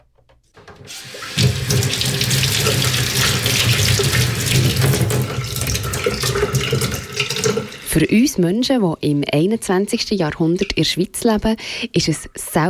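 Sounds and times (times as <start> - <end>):
water running from a tap into a sink: 0.6 - 8.3
speech: 0.8 - 2.0, 8.0 - 12.6.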